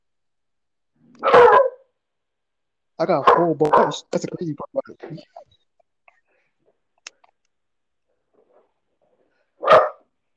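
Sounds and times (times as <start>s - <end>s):
dog barking: 1.2s - 1.9s, 3.2s - 4.1s, 9.6s - 10.1s
speech: 3.0s - 5.5s.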